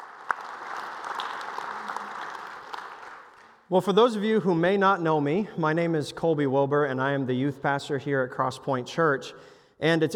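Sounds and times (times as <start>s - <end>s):
room full of people applauding: 0.0s - 3.7s
sharp individual claps: 0.0s - 3.7s
speech: 3.7s - 10.1s.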